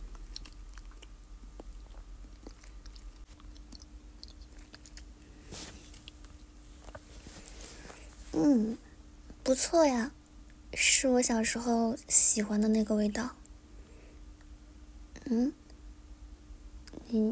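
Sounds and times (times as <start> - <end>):
biting and chewing homemade food: 0.0 - 8.0
soft faint crunches of homemade food: 4.6 - 8.5
speech: 9.5 - 10.2, 10.8 - 13.4, 15.3 - 15.6, 17.1 - 17.3.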